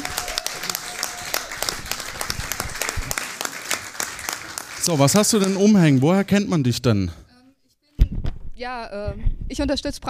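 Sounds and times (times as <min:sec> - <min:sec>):
crowd applauding: 0:00.0 - 0:06.6
speech: 0:04.8 - 0:07.2, 0:08.6 - 0:10.0.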